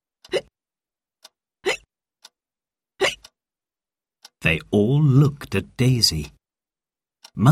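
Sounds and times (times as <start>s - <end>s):
person hiccuping: 1.6s - 1.9s, 3.0s - 3.3s
speech: 4.4s - 6.4s, 7.4s - 7.5s.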